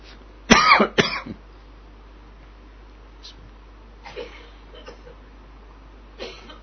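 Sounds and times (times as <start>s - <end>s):
low noise: 0.0s - 6.6s
people coughing in smoke from something burned indoors: 0.5s - 1.4s, 4.0s - 5.2s, 6.2s - 6.6s.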